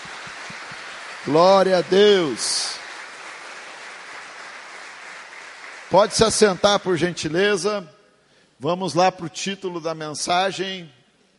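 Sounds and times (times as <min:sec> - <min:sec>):
church congregation applauding during a worship service: 0:00.0 - 0:07.1
speech: 0:01.2 - 0:02.7, 0:05.9 - 0:08.0, 0:08.6 - 0:11.0.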